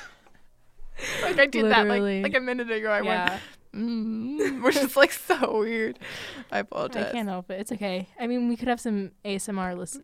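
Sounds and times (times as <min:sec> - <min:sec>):
odd breathing noise into the microphone: 0:00.9 - 0:01.4, 0:06.0 - 0:06.5
speech: 0:01.4 - 0:10.0.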